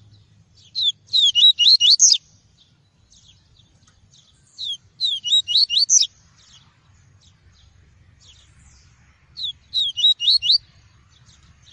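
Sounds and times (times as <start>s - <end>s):
seedeater singing tui-tui song of rapid high whistled notes: 0.7s - 2.2s, 4.6s - 6.1s, 9.4s - 10.6s.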